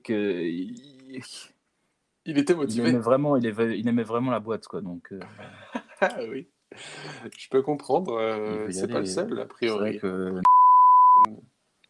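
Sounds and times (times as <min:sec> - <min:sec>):
speech: 0:00.0 - 0:01.6, 0:02.3 - 0:10.5
laughter: 0:05.2 - 0:07.2
censor bleep added in editing: 0:10.4 - 0:11.3.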